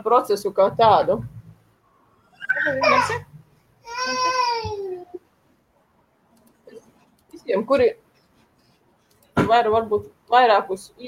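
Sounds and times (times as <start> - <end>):
speech: 0.0 - 1.4, 2.6 - 3.3, 7.4 - 8.0, 9.4 - 11.0
baby babbling while being lifted up: 2.3 - 5.2.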